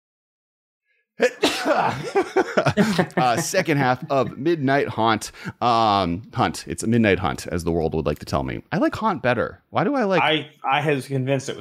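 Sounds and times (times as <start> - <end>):
person sneezing: 1.2 - 2.2
laughter: 1.2 - 5.1
speech: 1.2 - 11.5.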